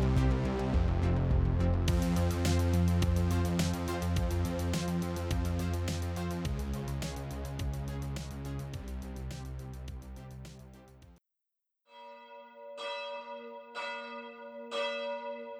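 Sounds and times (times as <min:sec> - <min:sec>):
brief musical passage: 0:00.0 - 0:11.2, 0:11.9 - 0:15.5
church bells ringing: 0:12.0 - 0:15.5.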